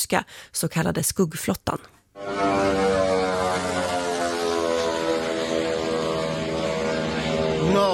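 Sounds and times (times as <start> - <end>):
speech: 0.0 - 2.8
droning engine buzz with harmonic whine: 2.2 - 7.9.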